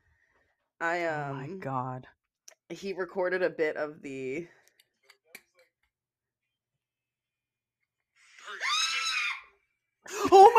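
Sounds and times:
speech: 0.8 - 4.6
person screaming in fright while wearing a VR headset: 8.4 - 9.6.

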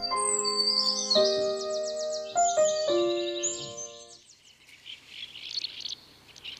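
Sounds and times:
ancient murrelets Synthliboramphus antiquus calling in chorus: 0.0 - 4.1
brief tonal musical opening: 0.0 - 4.2.

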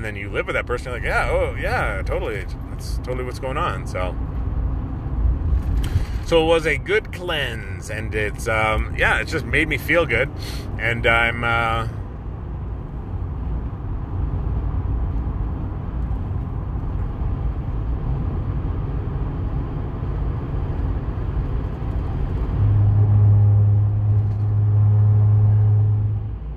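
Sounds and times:
speech: 0.0 - 4.3, 6.3 - 12.0
heavy engine drone: 0.0 - 13.4, 21.9 - 26.5
road traffic rumble: 0.0 - 26.5.

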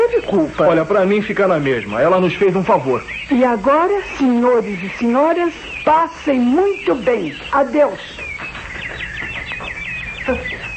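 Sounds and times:
small birds chirping: 0.0 - 10.7
speech: 0.3 - 8.3.

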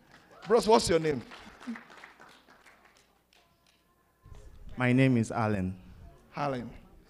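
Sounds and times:
small group applauding: 0.0 - 3.9
speech: 0.5 - 1.9, 4.8 - 5.8, 6.4 - 6.8.

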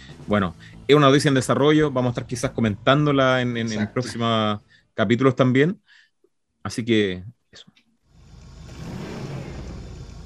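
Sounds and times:
speech: 0.3 - 6.0, 6.6 - 7.7
car engine starting and revving: 8.1 - 10.2.

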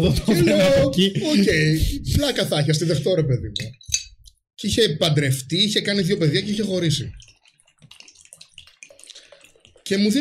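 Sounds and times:
laughter: 0.0 - 2.0
speech: 0.0 - 3.8, 4.6 - 7.4, 9.9 - 10.1
running water: 5.9 - 10.1.

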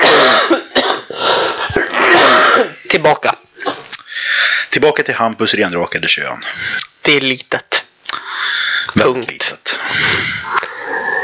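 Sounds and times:
two people coughing hard: 0.0 - 2.9, 3.6 - 3.9
speech: 2.9 - 3.4, 4.7 - 7.8, 8.9 - 11.2.

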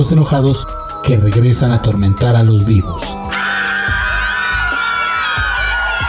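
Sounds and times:
speech: 0.0 - 3.3
crowd screaming in a high-pitched wail: 3.2 - 6.0.

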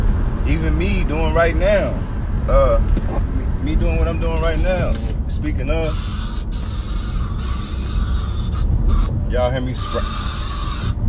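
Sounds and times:
low rumble: 0.0 - 11.0
speech: 0.5 - 6.2, 9.3 - 10.3
spray can hissing: 5.8 - 9.1, 9.8 - 11.0.

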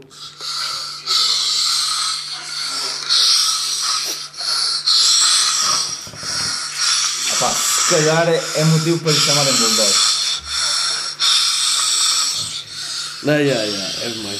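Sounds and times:
low electrical hum: 0.0 - 14.3
man snoring in his sleep: 4.9 - 14.3
speech: 7.9 - 10.1, 13.2 - 14.3.

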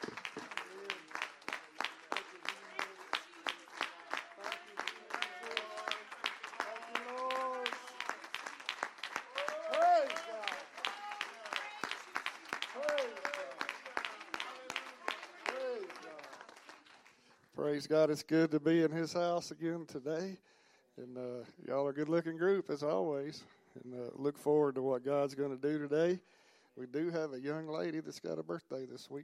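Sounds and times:
church congregation clapping hands in praise during a Sunday service: 0.0 - 17.5
speech: 17.7 - 29.2.

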